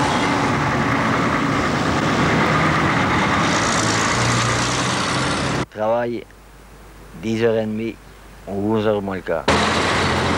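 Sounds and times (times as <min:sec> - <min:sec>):
bus engine rumbling as the bus departs: 0:00.0 - 0:05.7, 0:09.2 - 0:10.3
road noise: 0:00.0 - 0:10.3
speech: 0:07.2 - 0:09.6.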